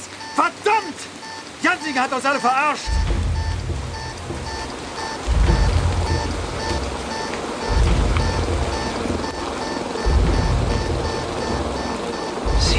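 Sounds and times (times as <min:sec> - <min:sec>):
heavy rain pouring: 0:00.0 - 0:12.7
speech: 0:01.8 - 0:03.1
deep rumbling surges: 0:02.9 - 0:12.7.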